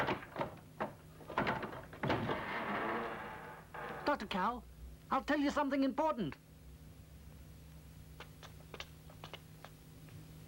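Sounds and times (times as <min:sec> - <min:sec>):
door clunks and rattles as it is opened: 0:00.0 - 0:03.4
speech: 0:04.2 - 0:06.4.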